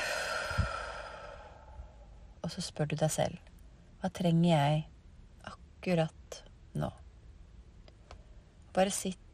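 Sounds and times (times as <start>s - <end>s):
long breath out through the mouth during a breathing exercise: 0.0s - 2.0s
speech: 2.4s - 7.0s, 8.8s - 9.3s.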